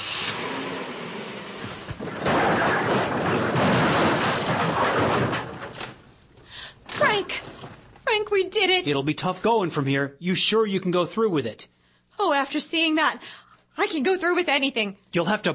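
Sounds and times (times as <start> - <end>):
car left in high gear rolling off the road: 0.2 - 8.0
scattered knocks and thuds: 1.6 - 8.0
speech: 8.4 - 15.5.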